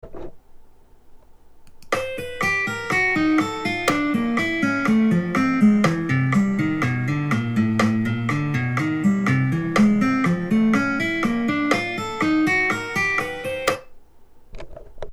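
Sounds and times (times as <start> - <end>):
stretchy guitar: 1.9 - 14.0.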